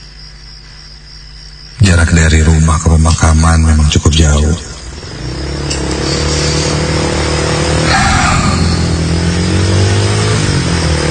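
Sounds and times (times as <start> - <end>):
speech: 1.8 - 4.7
motorcycle engine revving: 4.5 - 11.1
burst of noise: 4.7 - 11.1.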